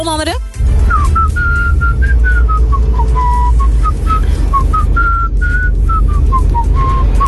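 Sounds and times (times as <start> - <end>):
speech: 0.0 - 0.8
low rumble of noise: 0.6 - 7.2
person whistling a catchy pop melody: 0.9 - 7.2.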